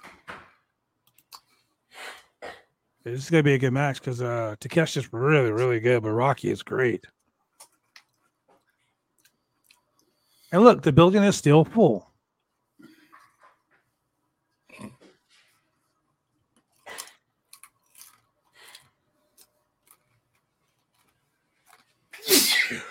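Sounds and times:
speech: 3.0s - 7.2s, 10.5s - 12.1s
faint clicks and rustles: 7.1s - 10.2s, 12.3s - 22.2s
loud sharp sneeze: 22.2s - 22.8s.

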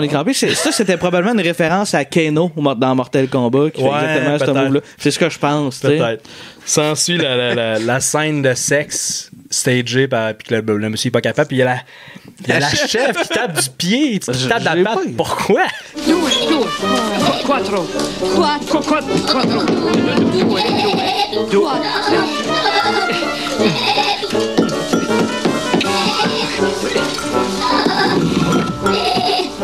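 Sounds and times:
speech: 0.0s - 23.8s
laughter: 0.4s - 1.2s, 7.0s - 8.0s, 12.4s - 13.8s, 14.4s - 29.6s
murmur of voices: 16.0s - 27.7s
goat bleating: 18.6s - 28.2s.

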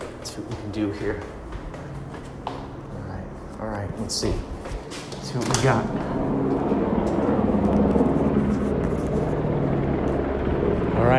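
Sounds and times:
helicopter hovering overhead: 0.0s - 11.1s
speech: 0.3s - 1.4s, 3.6s - 6.8s
faint rising whine: 5.8s - 11.1s.

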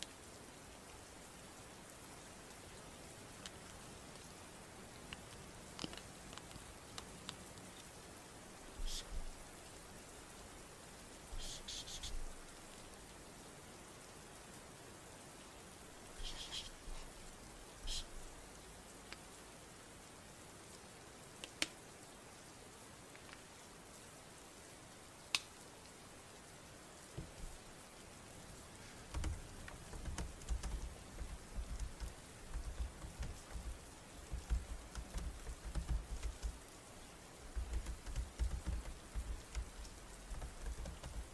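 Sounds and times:
steady dense rain pattering: 0.0s - 41.3s
sharp drips and taps: 29.1s - 36.6s, 37.5s - 41.3s.

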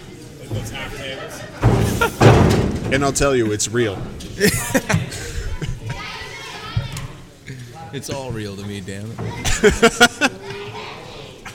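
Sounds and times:
speech: 0.6s - 2.2s, 2.9s - 5.4s, 7.9s - 10.4s
laughter: 0.7s - 2.6s, 4.3s - 6.2s, 9.3s - 11.5s
linen closet door being banged shut: 1.6s - 3.2s.

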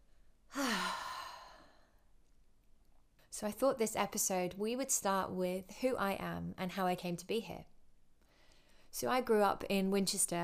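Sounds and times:
deep breath let out through the mouth during a guided breathing exercise: 0.5s - 2.0s
speech: 3.4s - 7.7s, 9.0s - 10.4s.

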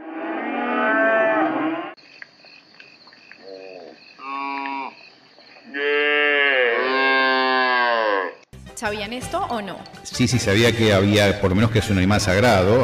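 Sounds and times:
cow mooing: 0.0s - 2.0s, 5.7s - 8.4s
insect chirr: 0.2s - 8.5s
speech: 8.8s - 12.8s.

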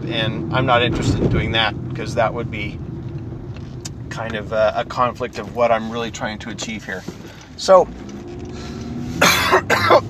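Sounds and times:
speech: 0.1s - 2.8s, 4.2s - 8.1s, 9.5s - 10.0s
person coughing: 9.2s - 10.0s.

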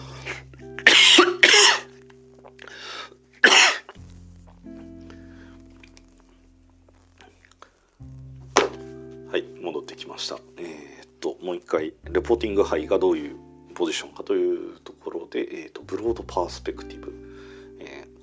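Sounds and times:
harsh coughing: 0.8s - 1.9s, 3.4s - 4.0s
speech: 11.7s - 17.2s.

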